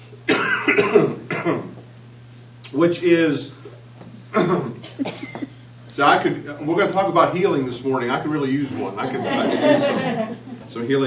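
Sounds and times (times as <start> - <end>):
person coughing after taking a cough drop: 0.3 - 1.8, 4.3 - 5.5
speech: 0.7 - 1.6, 2.7 - 3.6, 4.3 - 5.2, 6.0 - 11.0.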